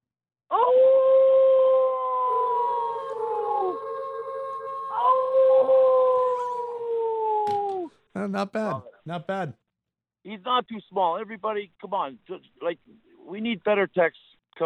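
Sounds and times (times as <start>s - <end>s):
person imitating a wolf-like howl: 0.5s - 7.9s
speech: 8.2s - 9.6s, 10.2s - 14.6s.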